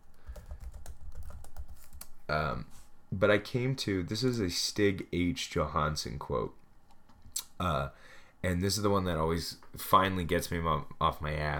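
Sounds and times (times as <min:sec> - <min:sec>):
rapid irregular typing on a computer keyboard: 0:00.2 - 0:02.1
speech: 0:02.3 - 0:06.6, 0:07.6 - 0:11.5.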